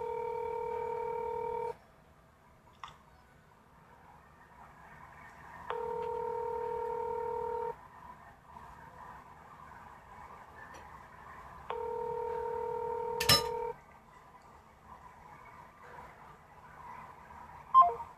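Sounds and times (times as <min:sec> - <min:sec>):
telephone keypad tones as a caller dials out: 0:00.0 - 0:01.7, 0:05.7 - 0:07.7, 0:11.7 - 0:13.7
faint low hum: 0:00.0 - 0:18.1.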